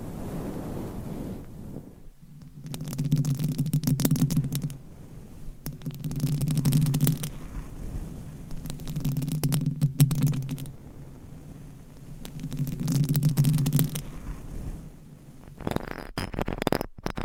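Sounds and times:
massage sounds on different microphones: 0.0 - 16.8
scratching with different items and nails: 1.4 - 17.2
tapping with different items and nails: 2.3 - 4.8, 5.6 - 7.8, 8.4 - 10.7, 12.0 - 14.5.

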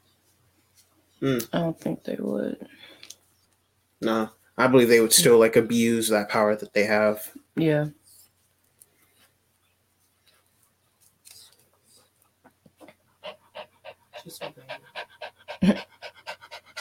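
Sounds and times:
speech: 1.2 - 2.9, 4.0 - 8.0
dog panting heavily: 13.2 - 16.7.

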